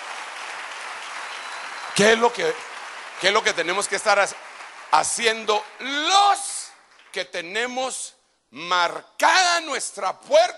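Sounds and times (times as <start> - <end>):
audience applause during a sermon: 0.0 - 7.3
speech: 2.0 - 6.5, 7.1 - 10.5.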